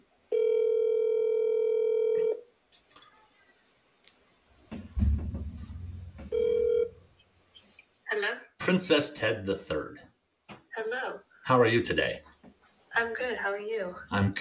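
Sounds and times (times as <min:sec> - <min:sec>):
outgoing phone call ringing tone: 0:00.3 - 0:02.4, 0:06.3 - 0:07.0
handling noise: 0:04.6 - 0:07.0
low thump: 0:04.7 - 0:06.7
speech: 0:08.7 - 0:10.1, 0:11.5 - 0:12.3, 0:13.0 - 0:14.3.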